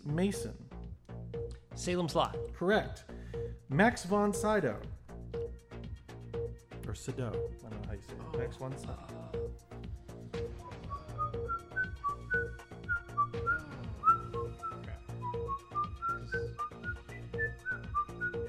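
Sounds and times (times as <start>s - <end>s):
speech: 0.1s - 0.6s, 1.8s - 3.1s, 3.7s - 4.9s, 6.9s - 9.7s
person whistling a melodic tune: 10.4s - 18.4s.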